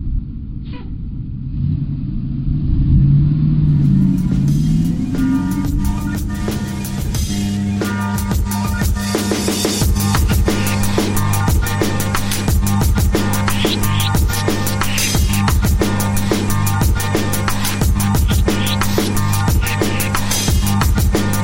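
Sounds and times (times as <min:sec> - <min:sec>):
bus engine revving and idling: 0:01.1 - 0:08.8, 0:09.8 - 0:21.4.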